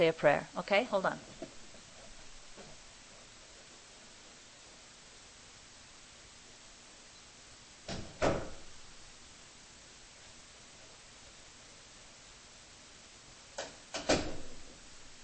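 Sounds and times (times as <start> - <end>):
speech: 0.0 - 1.4
steady hiss: 0.0 - 15.2
door being handled and shut: 7.9 - 8.8, 13.6 - 14.8.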